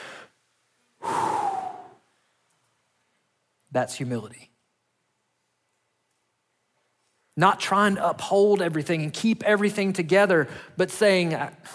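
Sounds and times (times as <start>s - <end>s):
person breathing in deeply: 1.0s - 2.0s
speech: 3.7s - 4.5s, 7.4s - 11.7s.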